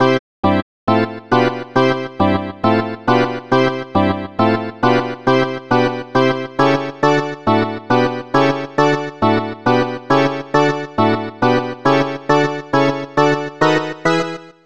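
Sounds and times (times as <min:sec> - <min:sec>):
classic baseball organ music from SNES: 0:00.0 - 0:14.3.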